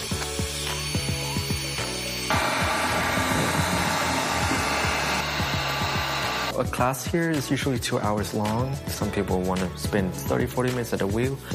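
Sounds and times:
heat gun drying a clay pot: 0:00.0 - 0:06.5
speech: 0:06.6 - 0:11.5.

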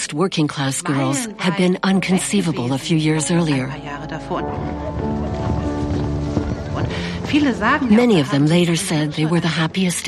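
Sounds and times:
busy noise: 0:00.0 - 0:10.0
speech: 0:00.1 - 0:05.3, 0:06.8 - 0:10.0
horse hooves clip-clopping: 0:04.2 - 0:10.0.

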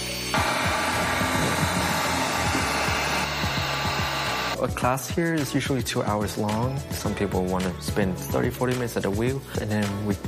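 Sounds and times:
heat gun blowing on freshly thrown clay pottery to dry it: 0:00.1 - 0:04.6
speech: 0:04.6 - 0:10.2.

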